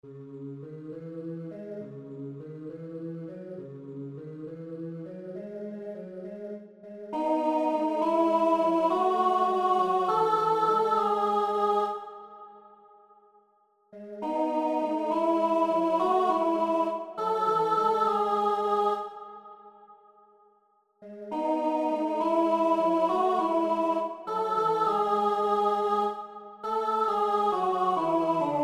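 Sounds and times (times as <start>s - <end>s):
alto voice singing: 7.0s - 12.3s, 14.0s - 19.4s, 21.0s - 28.6s.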